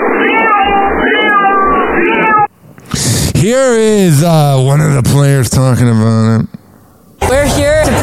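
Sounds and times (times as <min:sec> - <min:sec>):
cat meowing loudly in a drawn-out wavering yowl: 0:00.0 - 0:02.5
speech: 0:02.9 - 0:06.6.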